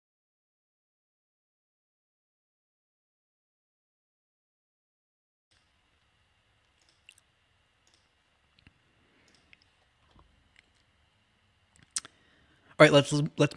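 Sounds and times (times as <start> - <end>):
soft wet mouth clicks while sipping water: 6.8 - 7.3, 8.6 - 9.8, 11.8 - 12.2
speech: 12.8 - 13.5.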